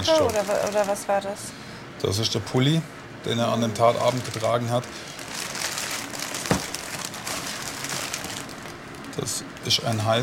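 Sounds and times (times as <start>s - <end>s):
plastic evidence bags holding clothing crinkling as pulled from a cardboard box: 0.0s - 1.3s, 3.8s - 10.0s
speech: 0.0s - 5.2s, 9.2s - 10.2s.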